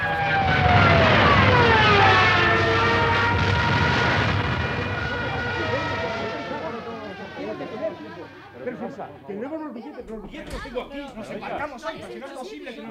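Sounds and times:
wartime warplanes diving over docks: 0.0 - 9.2.

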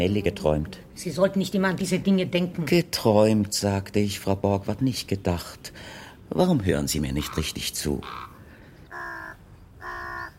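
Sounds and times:
speech: 0.0 - 8.3
two ravens cawing: 7.1 - 10.3.

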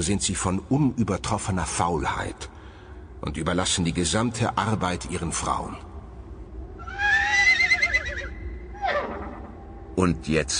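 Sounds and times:
speech: 0.0 - 2.6, 3.2 - 5.9, 10.0 - 10.5
horses whinnying in dawn mist on riverside meadows: 6.8 - 9.5.

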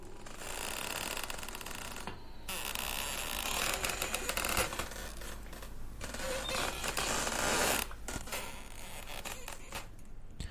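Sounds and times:
wooden coffin creaking and twisting: 0.2 - 9.9.

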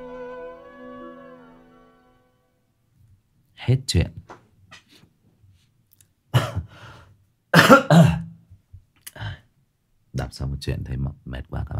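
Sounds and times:
speech: 3.7 - 4.4, 10.4 - 11.7
person with an ongoing cough coughing: 6.4 - 6.8, 7.6 - 8.4.

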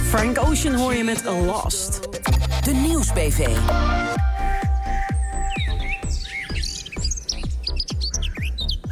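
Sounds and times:
speech: 0.1 - 4.3
steady regular low thumping pulse: 3.4 - 8.8
birds singing in mating season: 4.2 - 8.8.

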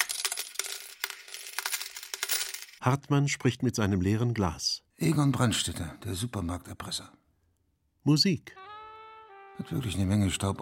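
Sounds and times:
coins dropping into a slot machine tray: 0.0 - 2.8
speech: 2.8 - 7.2, 8.0 - 8.6, 9.6 - 10.5.

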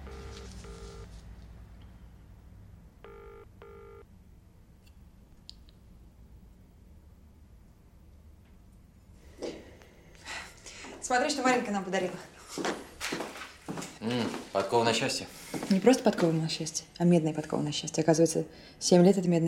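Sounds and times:
telephone tones as a number is dialled: 0.1 - 1.1
speech: 11.1 - 12.8, 14.1 - 19.4.

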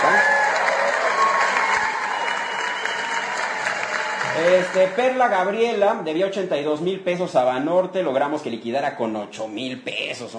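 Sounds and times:
audience applause: 0.0 - 5.6
speech: 4.7 - 10.3.

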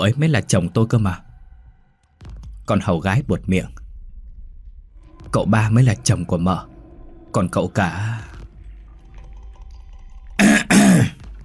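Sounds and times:
speech: 0.0 - 1.3, 2.7 - 3.8, 5.3 - 6.7, 7.3 - 8.3
young male servant clearing throat as a quiet warning: 10.4 - 11.2.

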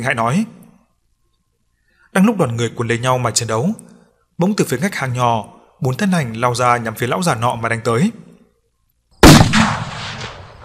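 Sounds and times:
speech: 0.0 - 0.6, 2.1 - 8.2
loud magical blast explosion with rumbling tail: 9.2 - 10.6.

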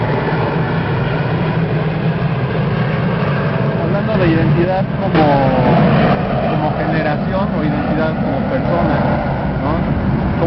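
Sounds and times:
airplane engine roar passing overhead: 0.0 - 10.4
speech: 4.2 - 6.2, 7.1 - 10.4.

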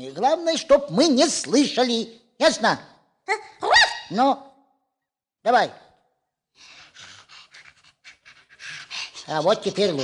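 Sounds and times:
speech: 0.0 - 4.5, 5.4 - 5.8, 9.3 - 10.0
heavy quick panting from someone crawling on their belly: 6.4 - 10.0.

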